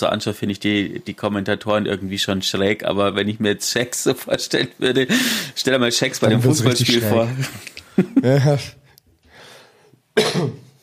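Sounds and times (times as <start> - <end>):
speech: 0.0 - 8.8, 10.2 - 10.6
breathy inhale: 5.1 - 5.6, 9.2 - 10.0
person coughing into the microphone: 10.2 - 10.8.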